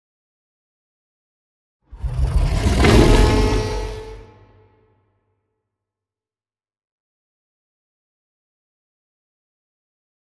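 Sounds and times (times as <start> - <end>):
adult kaiju ship entity raging: 2.0 - 4.6.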